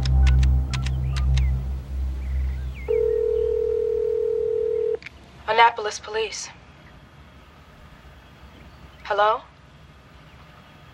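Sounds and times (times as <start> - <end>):
low rumble: 0.0 - 10.9
continuous telephone tone: 2.9 - 5.0
phone number dialing beeps: 2.9 - 5.0
speech: 5.6 - 6.6, 9.1 - 9.5.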